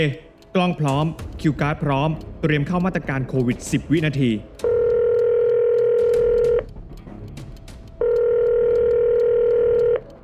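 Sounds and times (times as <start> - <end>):
speech: 0.0 - 4.6
long steady telephone ringback tones: 4.7 - 6.6, 8.0 - 10.1.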